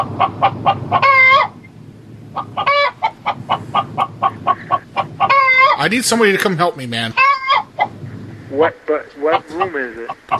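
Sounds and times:
chicken clucking in a room: 0:00.0 - 0:01.6, 0:02.3 - 0:05.8, 0:07.1 - 0:08.0, 0:08.6 - 0:10.3
speech: 0:05.8 - 0:07.3, 0:08.6 - 0:10.3.

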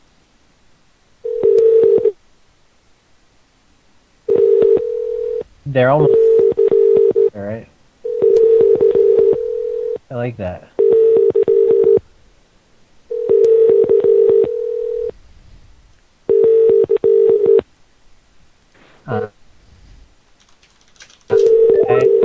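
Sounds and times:
telephone dialing tones: 0:01.3 - 0:02.1, 0:04.3 - 0:05.4, 0:06.0 - 0:07.3, 0:08.1 - 0:10.0, 0:10.8 - 0:12.0, 0:13.1 - 0:15.1, 0:16.3 - 0:17.6, 0:21.3 - 0:22.2
speech: 0:05.7 - 0:06.2, 0:07.4 - 0:07.7, 0:10.1 - 0:10.7, 0:19.1 - 0:19.4.

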